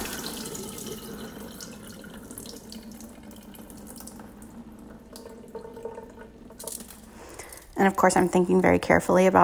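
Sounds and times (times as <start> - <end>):
tap water running into a bowl while rinsing rice: 0.0 - 8.4
speech: 7.8 - 9.4.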